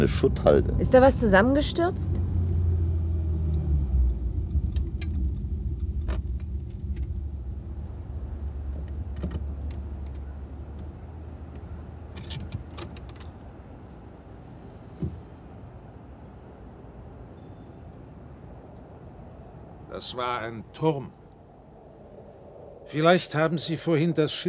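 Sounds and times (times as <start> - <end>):
speech: 0.0 - 2.3, 20.2 - 21.2, 22.9 - 24.4
car engine rumble driving toward a hill: 0.0 - 23.0
road drone: 0.0 - 24.4
faint clicks and knocks: 3.5 - 14.1.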